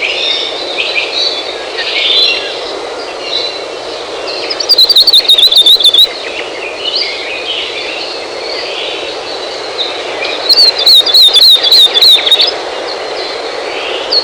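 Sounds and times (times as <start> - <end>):
constant rushing background noise: 0.0 - 14.2
Hawaii akepa high fast trills: 4.4 - 6.1, 10.5 - 12.5.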